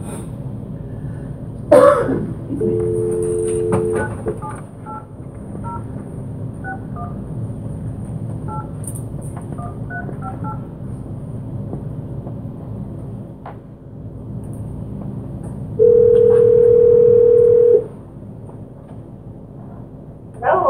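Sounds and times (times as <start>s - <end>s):
low hum: 0.0s - 20.6s
steady loud telephone tone while placing a call during a council meeting: 2.6s - 5.0s, 15.8s - 17.9s.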